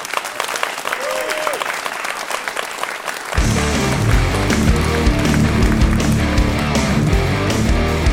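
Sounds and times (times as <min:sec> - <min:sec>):
large audience applause: 0:00.0 - 0:08.0.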